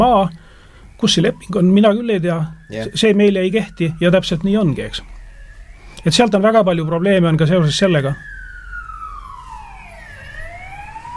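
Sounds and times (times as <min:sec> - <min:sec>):
speech: 0:00.0 - 0:00.4, 0:01.0 - 0:05.2, 0:06.0 - 0:08.4
ambulance siren wailing: 0:00.0 - 0:11.1
low rumble of traffic: 0:00.0 - 0:11.1.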